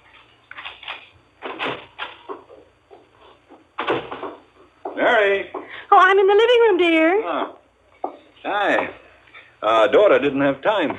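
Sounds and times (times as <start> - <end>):
man's footsteps coming up the walk to a front door: 0.0 - 5.7
speech: 5.0 - 7.6, 8.4 - 9.0, 9.6 - 10.9.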